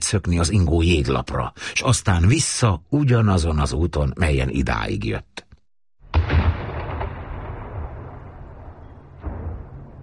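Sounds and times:
speech: 0:00.1 - 0:05.4
cannons at Gellért booming as the ice on the Danube starts to move: 0:06.0 - 0:10.0.

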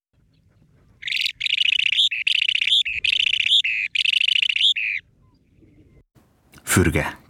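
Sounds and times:
small bird singing high buzzy trilling phrases: 0:00.2 - 0:06.1
speech: 0:06.8 - 0:07.2.

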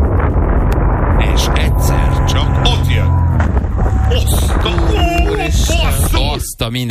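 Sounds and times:
wind rushing past a flying paraglider: 0:00.0 - 0:06.4
speech: 0:06.7 - 0:06.8.

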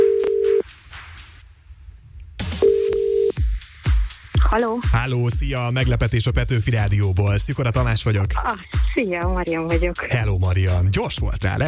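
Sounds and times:
telephone ringing out as a radio host calls a contest winner: 0:00.0 - 0:00.6, 0:02.6 - 0:03.4
speech: 0:04.5 - 0:11.6.

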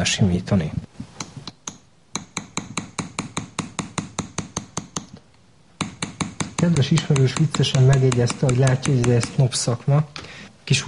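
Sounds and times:
speech: 0:00.0 - 0:00.8, 0:06.6 - 0:10.8
small hammer tapping metal to smooth a chased acanthus leaf cluster: 0:01.2 - 0:05.2, 0:05.8 - 0:09.4.

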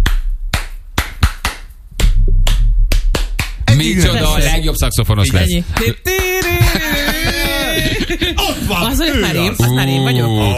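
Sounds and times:
sharp hand claps: 0:00.0 - 0:03.7, 0:05.7 - 0:08.0
low rumble: 0:01.7 - 0:10.5
speech: 0:03.8 - 0:06.2, 0:07.8 - 0:10.5
laughter: 0:05.8 - 0:10.5.

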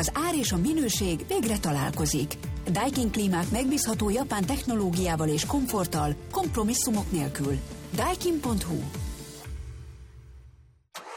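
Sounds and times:
speech: 0:00.0 - 0:09.0
new car engine starting and rumbling: 0:09.2 - 0:11.1.

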